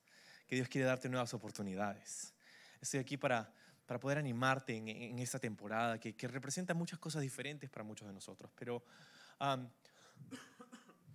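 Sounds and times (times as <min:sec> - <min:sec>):
speech: 0:00.5 - 0:10.8
loud cough: 0:10.3 - 0:11.1.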